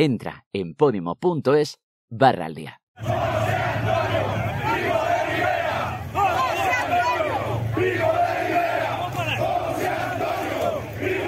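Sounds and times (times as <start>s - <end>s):
speech: 0.0s - 3.9s
large crowd chanting Francoist slogans at a rally: 3.0s - 11.2s.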